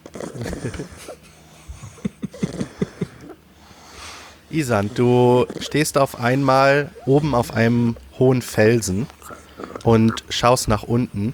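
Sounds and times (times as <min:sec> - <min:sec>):
person imitating snoring: 0:00.0 - 0:01.1, 0:02.2 - 0:03.4, 0:04.5 - 0:08.0, 0:09.2 - 0:10.4
speech: 0:00.4 - 0:01.2, 0:04.5 - 0:09.2, 0:09.8 - 0:11.3.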